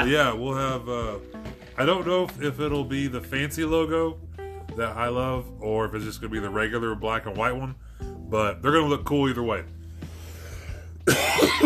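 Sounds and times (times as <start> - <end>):
speech: 0.0 - 9.8, 11.1 - 11.6
harsh throaty cough: 11.0 - 11.6.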